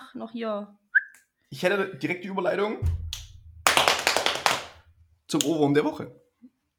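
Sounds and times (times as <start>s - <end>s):
speech: 0.1s - 0.8s, 1.5s - 3.0s, 5.3s - 6.2s
shredded cabbage pounded for sauerkraut in a 10-liter pot: 2.8s - 4.8s.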